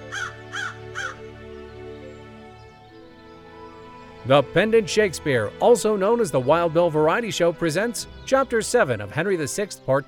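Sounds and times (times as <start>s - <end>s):
crow cawing: 0.0s - 1.3s
speech: 4.2s - 10.0s.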